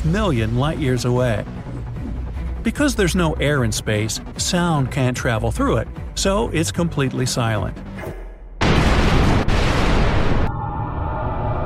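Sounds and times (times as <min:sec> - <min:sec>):
speech: 0:00.0 - 0:01.6, 0:02.6 - 0:08.2
deep roaring explosion effect in the style of science-fiction films: 0:08.6 - 0:11.6.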